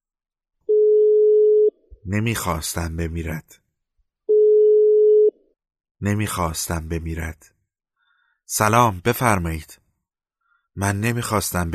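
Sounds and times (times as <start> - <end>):
telephone ringback tone: 0.7 - 1.7, 4.3 - 5.3
speech: 2.0 - 3.6, 6.0 - 7.5, 8.5 - 9.8, 10.8 - 11.7.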